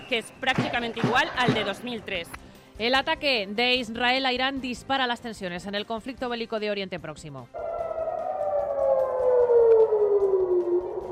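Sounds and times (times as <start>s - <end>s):
speech: 0.1s - 7.6s
air raid sirens wailing in Jerusalem: 7.6s - 11.1s.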